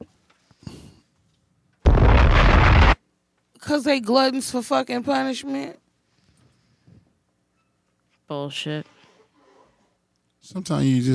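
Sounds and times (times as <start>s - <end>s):
bomb explosion: 1.9s - 3.0s
speech: 3.7s - 5.8s, 8.3s - 9.0s, 10.4s - 11.1s.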